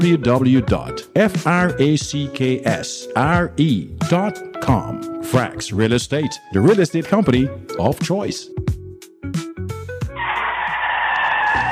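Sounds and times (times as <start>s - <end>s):
speech: 0.0s - 8.6s
car tires skidding in an accident: 10.2s - 11.7s.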